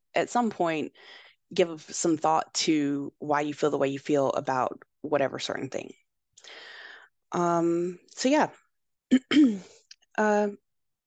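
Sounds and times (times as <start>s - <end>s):
speech: 0.2s - 6.7s, 7.3s - 10.6s
person coughing: 9.1s - 9.7s.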